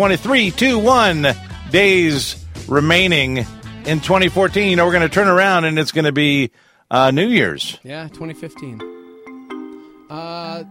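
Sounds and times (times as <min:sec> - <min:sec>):
speech: 0:00.0 - 0:08.9
electronic ringtone melody: 0:07.9 - 0:10.7.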